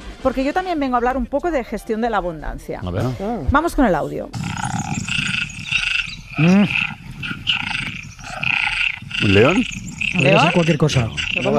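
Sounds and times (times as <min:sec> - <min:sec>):
speech: 0:00.2 - 0:04.5, 0:06.4 - 0:07.0, 0:09.2 - 0:11.5
loud deep rasping croak: 0:04.3 - 0:11.5
tree frogs calling in a dense chorus: 0:04.4 - 0:11.5.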